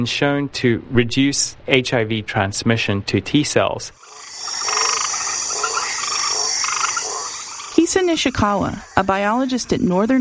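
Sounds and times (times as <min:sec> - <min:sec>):
speech: 0:00.0 - 0:04.1, 0:07.9 - 0:10.1
White's tree frog croaking: 0:04.0 - 0:10.1
high-pitched chorus of insects: 0:04.0 - 0:10.1.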